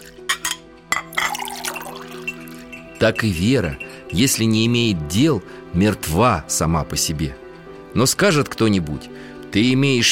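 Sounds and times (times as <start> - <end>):
light glassy clinks of a glass: 0.3 - 4.7
tea trickling as it is poured into a glass: 1.1 - 4.4
speech: 3.0 - 10.0.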